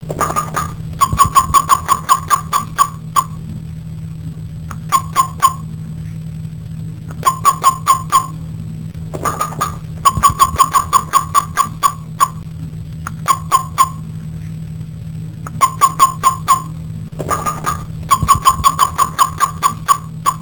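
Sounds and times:
Taiwanese frog calling: 0:00.1 - 0:03.5, 0:04.7 - 0:05.7, 0:07.1 - 0:08.5, 0:09.1 - 0:12.4, 0:13.1 - 0:14.1, 0:15.4 - 0:20.4.

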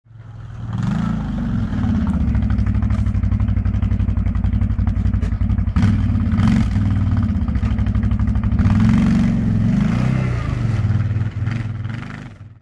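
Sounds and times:
quad bike engine: 0:00.1 - 0:12.5.

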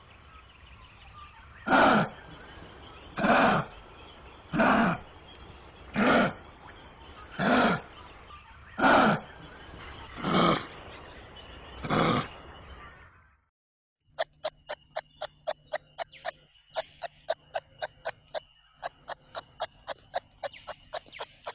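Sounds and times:
kangaroo sounds: 0:01.7 - 0:02.4, 0:03.1 - 0:03.8, 0:04.5 - 0:05.1, 0:05.9 - 0:06.5, 0:07.2 - 0:09.4, 0:14.2 - 0:21.5.

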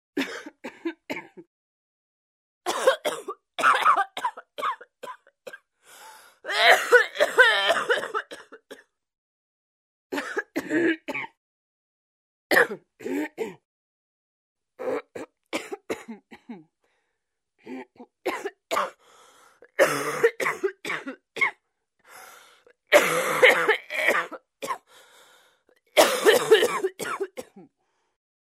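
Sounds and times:
woman coughing: 0:00.2 - 0:01.5, 0:02.7 - 0:05.6, 0:06.5 - 0:08.9, 0:10.2 - 0:11.4, 0:12.5 - 0:13.6, 0:15.2 - 0:16.6, 0:17.8 - 0:19.0, 0:19.8 - 0:21.6, 0:22.9 - 0:24.9, 0:26.0 - 0:27.7.

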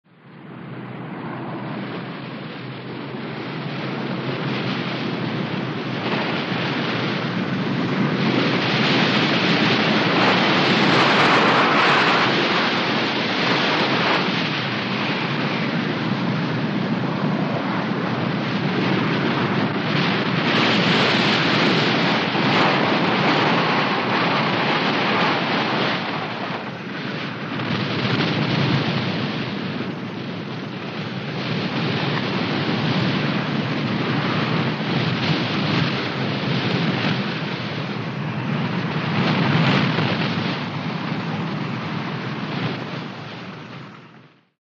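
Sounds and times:
hurricane wind: 0:00.1 - 0:44.6.

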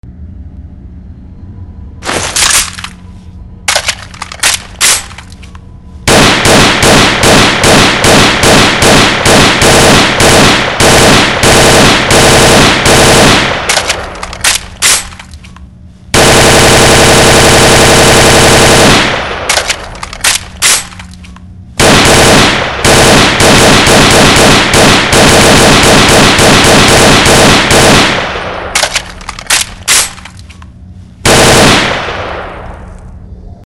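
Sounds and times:
gunfire: 0:02.0 - 0:03.0, 0:03.7 - 0:05.5, 0:06.1 - 0:15.5, 0:16.1 - 0:30.6, 0:31.2 - 0:33.0
ammunition belt being loaded: 0:02.1 - 0:03.1, 0:03.7 - 0:05.6, 0:13.7 - 0:15.7, 0:19.5 - 0:21.5, 0:28.8 - 0:30.7.

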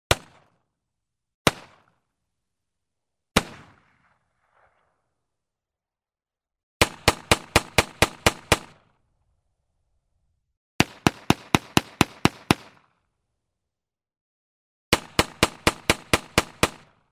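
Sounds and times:
pistol shots: 0:00.1 - 0:00.6, 0:01.4 - 0:02.0, 0:03.4 - 0:04.2, 0:06.8 - 0:08.9, 0:10.8 - 0:12.9, 0:14.9 - 0:17.0.

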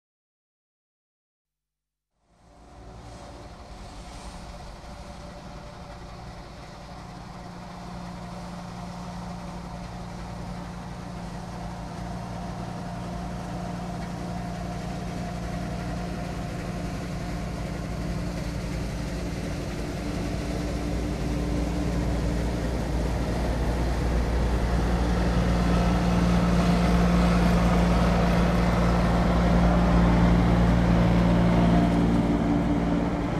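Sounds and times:
grain combine harvester: 0:02.4 - 0:33.3.

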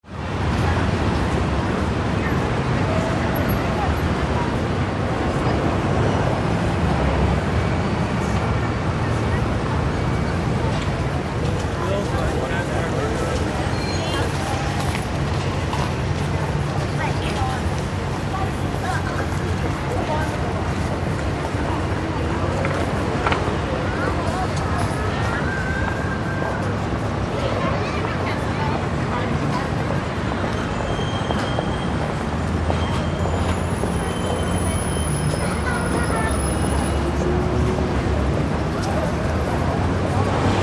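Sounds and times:
city road traffic noise: 0:00.0 - 0:40.6.

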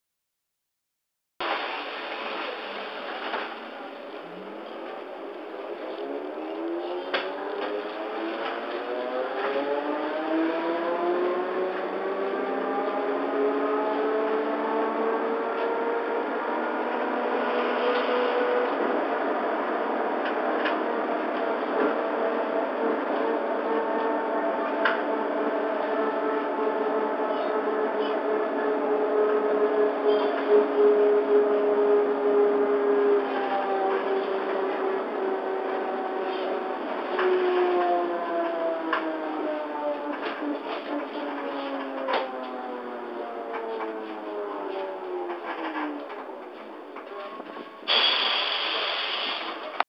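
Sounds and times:
trolleybus accelerating: 0:01.4 - 0:49.8.

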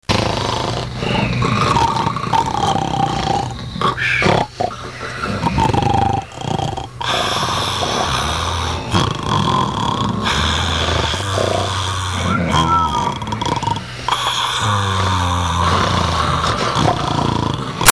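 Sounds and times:
strong snore: 0:00.0 - 0:17.9.

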